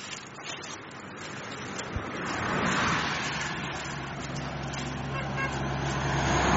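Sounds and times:
cars driving past on narrow road: 0:00.7 - 0:06.5.

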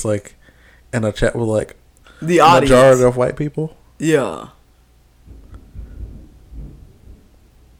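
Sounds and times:
speech: 0:00.0 - 0:04.6
faint hiss: 0:00.0 - 0:07.7
low thunder rumbling in rolling waves: 0:05.2 - 0:07.7.

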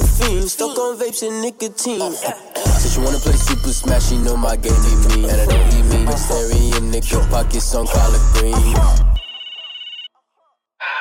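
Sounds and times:
speech: 0:00.3 - 0:09.1
telephone ringing with a bright electronic tone: 0:09.1 - 0:10.2.

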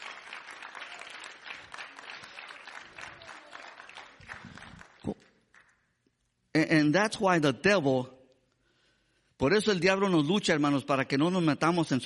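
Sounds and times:
audience applauding: 0:00.0 - 0:05.8
speech: 0:06.6 - 0:08.2, 0:09.4 - 0:12.0.

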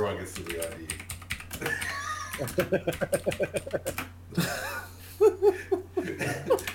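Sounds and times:
speech: 0:00.2 - 0:01.0, 0:02.4 - 0:04.6
loud computer keyboard typing: 0:00.4 - 0:04.1
bursts of laughter: 0:01.6 - 0:06.7.

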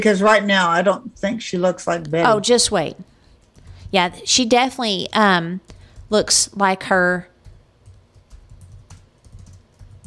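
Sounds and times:
speech: 0:00.0 - 0:03.1, 0:03.9 - 0:07.3
low hum: 0:00.0 - 0:10.0
rapid uneven typing on a computer keyboard: 0:07.4 - 0:10.0.

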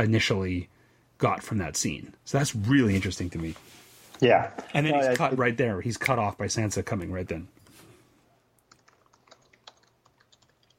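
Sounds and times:
speech: 0:00.0 - 0:07.6
computer keyboard typing: 0:08.6 - 0:10.7.

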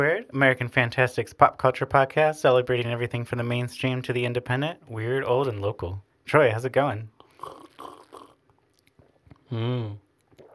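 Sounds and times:
speech: 0:00.0 - 0:08.0, 0:09.5 - 0:10.0
person gulping sips of bourbon: 0:07.2 - 0:10.5.

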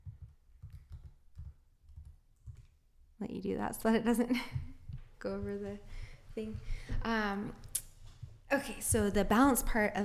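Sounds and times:
keys clacking on a computer keyboard: 0:00.0 - 0:02.8
speech: 0:03.2 - 0:07.7, 0:08.5 - 0:10.0.

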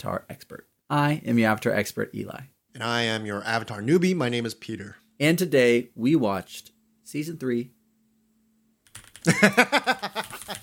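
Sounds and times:
speech: 0:00.0 - 0:07.8, 0:09.2 - 0:10.2
typing on a loud computer keyboard: 0:08.9 - 0:09.3, 0:10.2 - 0:10.6
laughter: 0:09.3 - 0:10.6.

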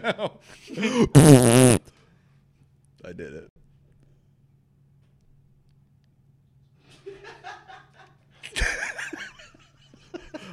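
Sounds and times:
speech: 0:00.0 - 0:01.9, 0:03.1 - 0:03.5
farts blown into a microphone: 0:01.2 - 0:01.8
laughter: 0:06.9 - 0:10.5.

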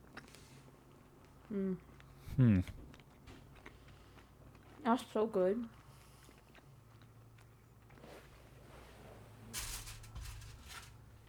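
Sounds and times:
chewing of chocolate: 0:00.0 - 0:08.5
speech: 0:01.5 - 0:02.8, 0:04.8 - 0:05.8
soft irregular crunching of chocolate: 0:09.6 - 0:11.2.

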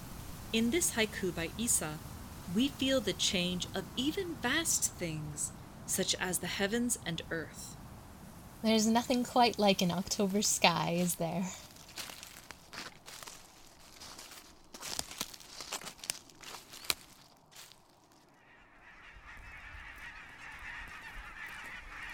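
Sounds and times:
soft steady hiss: 0:00.0 - 0:18.1
speech: 0:00.5 - 0:07.8, 0:08.6 - 0:11.6
geese honking while migrating south for the winter: 0:18.4 - 0:22.1.

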